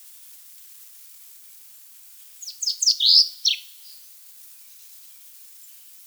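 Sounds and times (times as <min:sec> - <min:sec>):
common chaffinch Fringilla coelebs song phrase: 0:02.4 - 0:04.0.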